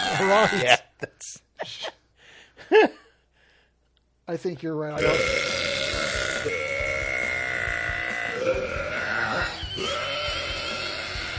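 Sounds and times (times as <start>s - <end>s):
speech: 0.2s - 1.9s, 2.7s - 3.0s, 4.3s - 5.8s
long loud rumbling burp: 5.0s - 11.3s.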